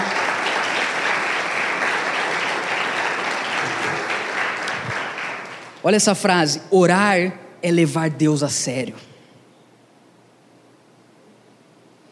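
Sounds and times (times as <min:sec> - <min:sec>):
audience applauding: 0:00.0 - 0:06.0
speech: 0:05.8 - 0:09.1.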